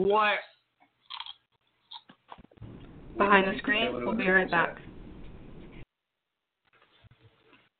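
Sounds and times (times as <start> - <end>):
speech: 0.0 - 0.5, 3.2 - 4.9
crunchy chewing of a burrito: 1.0 - 2.5.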